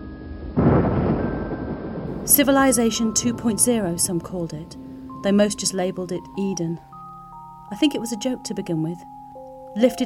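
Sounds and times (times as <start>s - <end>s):
loud deep rumbling thunder: 0.0s - 6.0s
speech: 2.3s - 6.9s, 7.7s - 10.0s.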